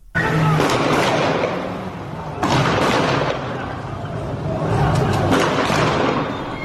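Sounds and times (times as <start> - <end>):
rough noisy street background in Iranshahr: 0.0 - 6.6
machine-gun fire in the streets of Iranshahr Iran: 0.4 - 3.7, 5.2 - 6.5.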